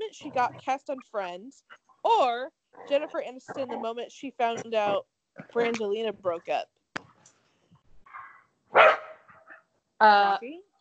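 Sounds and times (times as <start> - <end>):
speech: 0.1 - 6.8, 10.0 - 10.7
two dogs barking and yipping playfully in a house: 8.2 - 9.3.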